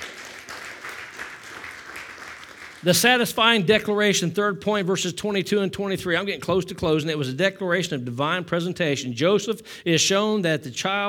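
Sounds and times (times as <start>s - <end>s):
church congregation clapping: 0.0s - 3.5s
speech: 2.8s - 11.0s.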